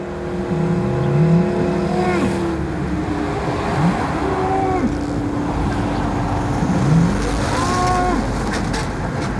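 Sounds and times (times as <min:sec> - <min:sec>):
loud steady motorway traffic noise: 0:00.0 - 0:09.3
Belgian Blue cow mooing by a roadside: 0:00.6 - 0:02.6, 0:03.2 - 0:05.2, 0:06.8 - 0:08.4.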